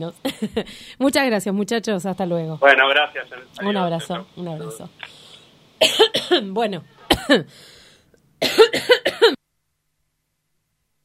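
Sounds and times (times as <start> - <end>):
speech: 0.0 - 5.2, 5.8 - 7.7, 8.4 - 9.4
person in a loud coughing fit: 5.8 - 6.5, 7.1 - 7.5, 8.4 - 9.4.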